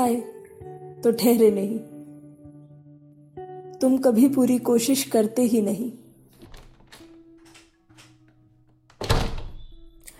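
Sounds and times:
speech: 0.0s - 1.9s, 3.8s - 6.0s
door slamming shut with a heavy thud: 6.4s - 8.2s, 8.9s - 9.8s.

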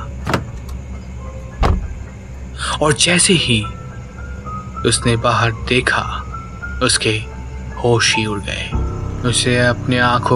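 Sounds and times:
car door clunks as someone gets out of a stationary car: 0.0s - 2.4s
low steady hum inside a stationary car: 0.0s - 10.3s
speech: 2.8s - 3.8s, 4.8s - 10.3s.

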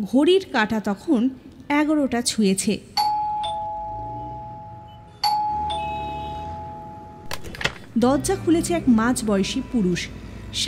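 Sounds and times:
speech: 0.0s - 3.1s, 8.0s - 10.6s
two-tone ding-dong doorbell chime at a flat: 3.0s - 7.2s.

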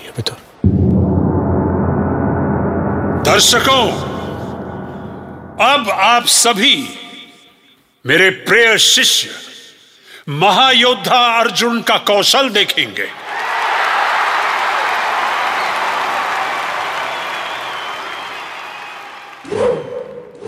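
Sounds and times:
speech: 0.2s - 0.9s, 3.3s - 4.1s, 5.6s - 7.0s, 8.0s - 9.5s, 10.3s - 13.2s
louder crashing impact: 0.6s - 6.4s
crowd roaring: 13.3s - 20.2s.

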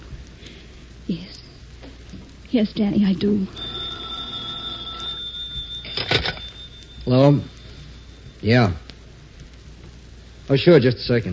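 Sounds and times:
speech: 2.5s - 3.7s, 7.1s - 7.5s, 8.4s - 8.8s, 10.5s - 11.3s
telephone ringing with a shrill bell tone: 3.4s - 8.4s
brief clattering burst: 3.6s - 8.0s.

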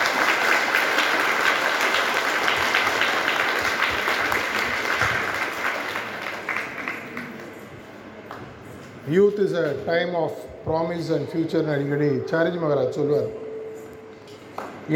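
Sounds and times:
large audience applauding a speaker: 0.0s - 7.6s
speech: 9.1s - 13.4s.

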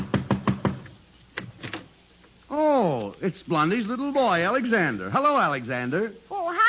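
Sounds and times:
knocking on a front door: 0.0s - 0.9s
speech: 3.2s - 6.4s.

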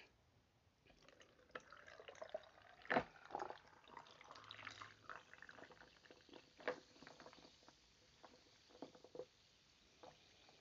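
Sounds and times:
crisp apple drink fizzing as poured into a Pilsner glass over ice: 0.9s - 10.5s
ice clinking as it shifts in a Pilsner glass: 1.0s - 7.4s.

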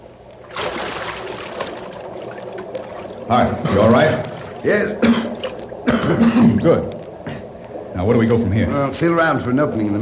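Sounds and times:
sewer water sloshing and churning: 0.4s - 8.4s
person dropping into sewer water with heavy splash: 0.5s - 2.4s
speech: 3.3s - 5.3s, 6.1s - 7.0s, 8.0s - 10.0s.

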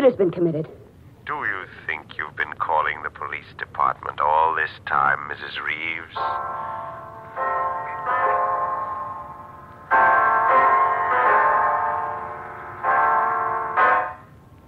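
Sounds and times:
speech: 0.1s - 7.6s
clock striking ten o'clock with resonant chimes: 6.0s - 14.6s.

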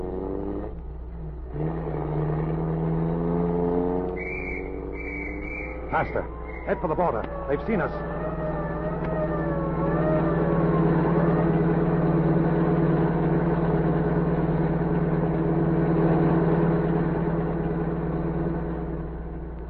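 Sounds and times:
general's car engine revving as it pulls away: 0.0s - 19.6s
brief high police whistle: 4.1s - 12.4s
wavering siren-like whine: 4.2s - 15.2s
speech: 5.9s - 8.2s.

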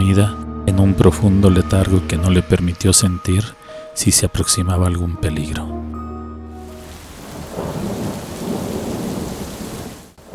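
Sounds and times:
speech: 0.2s - 5.8s
heavy rain pouring down in a thunderstorm: 6.6s - 10.3s
deep rumble of thunder: 6.7s - 10.3s.

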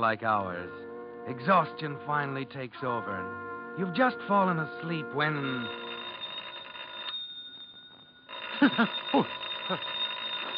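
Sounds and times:
speech: 0.0s - 6.0s, 8.7s - 9.9s
telephone ringing with bell-like trill: 3.8s - 10.5s.

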